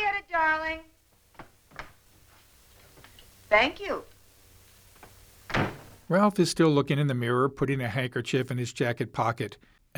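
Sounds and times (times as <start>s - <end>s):
speech: 3.5s - 4.1s, 6.1s - 9.9s
door opening with a faint click: 5.5s - 5.9s
door shutting with a loud thud: 5.5s - 6.0s.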